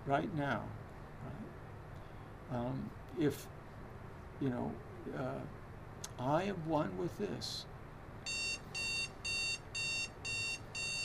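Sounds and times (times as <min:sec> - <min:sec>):
low hum: 0:00.0 - 0:11.0
speech: 0:00.1 - 0:01.4, 0:02.5 - 0:03.6, 0:04.4 - 0:05.6, 0:06.2 - 0:08.4
alarm clock beeping: 0:08.3 - 0:11.0.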